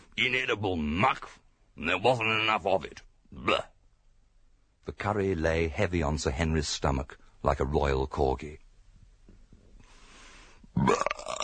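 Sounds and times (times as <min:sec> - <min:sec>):
speech: 0:00.2 - 0:03.7, 0:04.8 - 0:08.6, 0:10.8 - 0:11.2
person belching after a heavy curry meal: 0:10.7 - 0:11.4
person gulping: 0:10.7 - 0:11.4.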